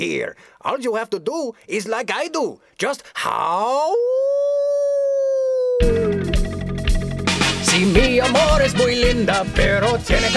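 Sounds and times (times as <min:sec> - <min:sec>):
speech: 0:00.0 - 0:04.3, 0:07.8 - 0:10.3
voice imitating a coyote howl: 0:03.2 - 0:06.4
loud busy music: 0:06.4 - 0:10.3.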